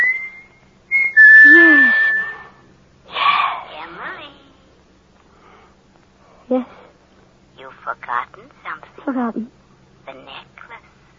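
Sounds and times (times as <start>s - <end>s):
man whistling a signal: 0.0s - 2.6s
speech: 9.1s - 9.6s.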